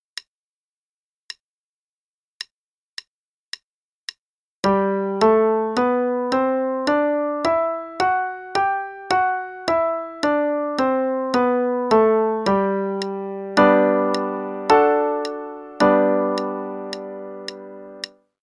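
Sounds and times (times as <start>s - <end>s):
G major scale and I-V-I chord progression: 4.6s - 18.2s.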